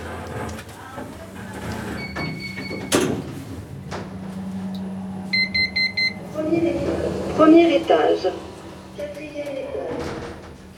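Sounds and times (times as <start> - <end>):
elevator doors sliding shut with a solid thump: 0.0 - 10.7
low motor hum: 0.0 - 10.7
steady tone: 3.7 - 10.7
high electronic beeps: 5.3 - 6.3
speech: 7.4 - 8.4.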